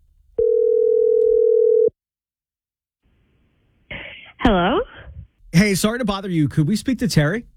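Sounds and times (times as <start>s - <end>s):
steady loud telephone tone during call placement: 0.4s - 2.0s
speech: 4.5s - 4.9s, 5.6s - 7.5s.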